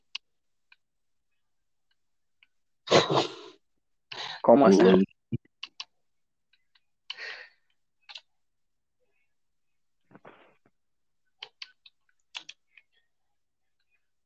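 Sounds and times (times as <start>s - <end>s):
speech: 2.9s - 3.4s, 4.5s - 5.5s
typing on a computer keyboard: 11.4s - 13.0s.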